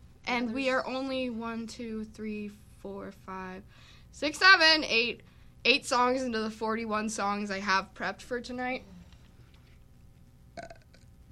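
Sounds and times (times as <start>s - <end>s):
speech: 0.3s - 9.0s
faint burp: 10.6s - 11.2s.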